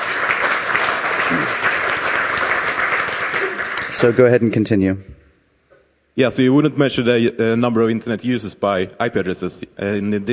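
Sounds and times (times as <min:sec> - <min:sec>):
audience applause for a speaker at a presentation: 0:00.0 - 0:04.4
speech: 0:04.0 - 0:05.2, 0:06.2 - 0:10.3.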